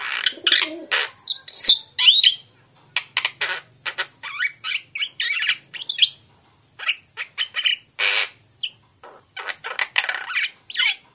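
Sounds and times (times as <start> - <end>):
Javan pied starling song: 0.0 - 6.2, 6.8 - 11.1.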